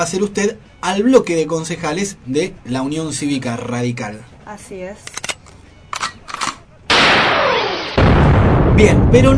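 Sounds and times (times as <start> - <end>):
speech: 0.0 - 5.2, 8.8 - 9.3
gunshots: 6.9 - 9.3.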